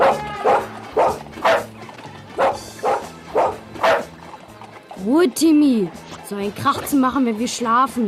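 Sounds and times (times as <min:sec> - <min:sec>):
dog barking: 0:00.0 - 0:01.7, 0:02.4 - 0:04.1
speech: 0:05.0 - 0:08.0.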